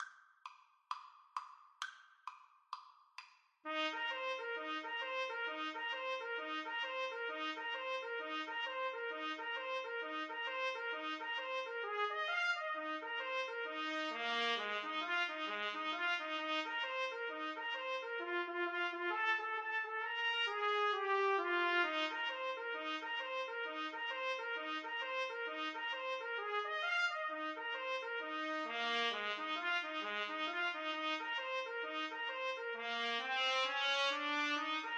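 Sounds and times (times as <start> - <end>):
trumpet duet playing boogie: 3.7 - 34.9.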